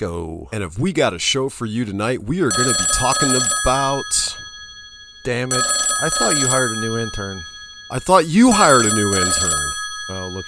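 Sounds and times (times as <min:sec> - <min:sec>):
speech: 0:00.0 - 0:04.4, 0:05.2 - 0:10.4
telephone ringing with wavering voice-like tones: 0:02.4 - 0:10.4.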